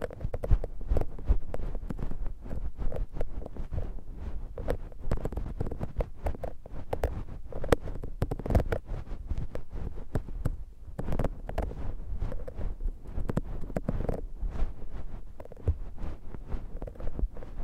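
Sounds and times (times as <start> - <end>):
close muffled crackly rubbing of an ear massage on the left: 0.0 - 17.6.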